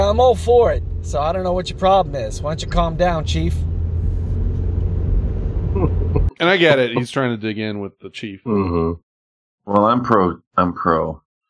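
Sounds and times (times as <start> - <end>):
road and engine rumble inside a moving car: 0.0 - 7.1
speech: 0.1 - 3.7, 6.4 - 9.0, 9.6 - 11.2.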